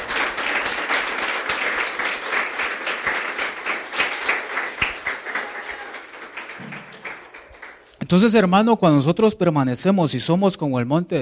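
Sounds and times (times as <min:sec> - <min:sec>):
church audience applauding: 0:00.0 - 0:08.1
speech: 0:08.1 - 0:11.2.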